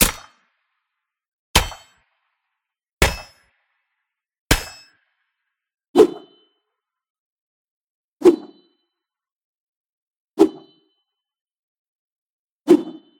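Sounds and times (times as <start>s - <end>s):
pickaxe striking: 0.0s - 0.3s, 1.6s - 2.0s, 3.0s - 3.5s, 4.5s - 5.0s.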